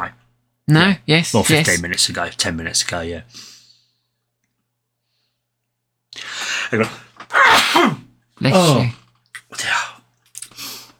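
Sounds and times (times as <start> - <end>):
speech: 0.0 - 3.5, 6.2 - 7.0, 7.8 - 9.8
person sneezing loudly: 7.3 - 8.8.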